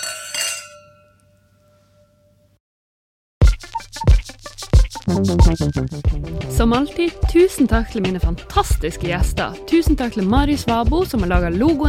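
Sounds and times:
glasses clinking together in a toast: 0.0s - 2.1s
loud rhythmic music: 3.4s - 11.8s
speech: 5.1s - 11.8s.

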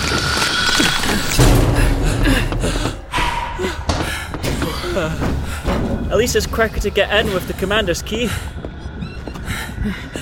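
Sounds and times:
heavy door creaking: 0.1s - 6.3s
heavy door slamming shut with a deep booming thud: 1.4s - 4.8s
speech: 5.0s - 5.3s, 6.2s - 8.6s, 9.8s - 10.1s.

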